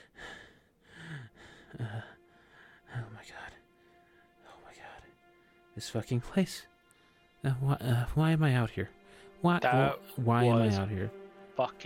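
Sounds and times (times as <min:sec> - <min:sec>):
heavy ragged breathing after a fight: 0:00.0 - 0:03.1
speech: 0:01.7 - 0:02.2, 0:05.8 - 0:06.7, 0:07.4 - 0:11.8.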